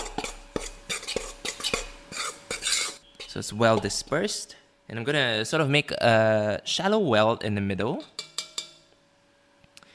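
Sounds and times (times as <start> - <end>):
spoon stirring sugar and a pinch of salt in a bowl: 0.0 - 4.3, 8.0 - 8.8
speech: 3.4 - 8.2.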